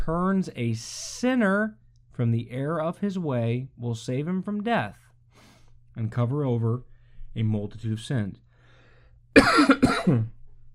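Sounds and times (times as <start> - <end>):
speech: 0.0 - 5.0, 6.0 - 8.4, 9.3 - 10.4
throaty coughs: 9.4 - 10.4.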